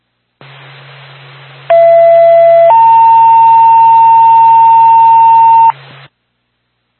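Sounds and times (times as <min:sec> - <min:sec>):
fire department two-tone dispatch paging alert over a radio channel: 0:01.7 - 0:05.7.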